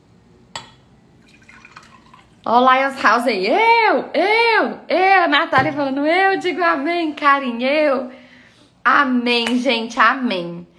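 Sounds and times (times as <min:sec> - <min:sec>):
sharp glassy clink: 0:00.6 - 0:00.9
soft bubbling liquid: 0:01.2 - 0:02.5
speech: 0:02.4 - 0:08.2, 0:08.8 - 0:10.7.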